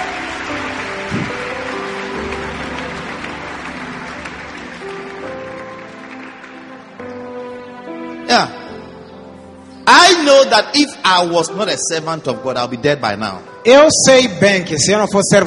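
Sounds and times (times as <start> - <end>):
church congregation clapping: 0.0 - 8.1
speech: 8.3 - 8.6, 10.4 - 15.4.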